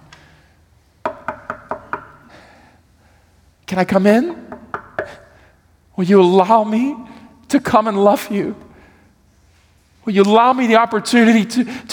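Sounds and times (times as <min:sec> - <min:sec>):
firm knocking on a door: 0:01.0 - 0:02.2
speech: 0:03.7 - 0:04.4, 0:06.0 - 0:08.6, 0:10.0 - 0:11.9.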